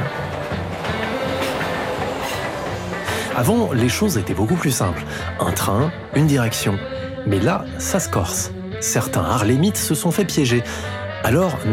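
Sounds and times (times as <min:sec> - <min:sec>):
New York subway train rumbling along the rails: 0:00.0 - 0:06.2
speech: 0:03.4 - 0:11.7.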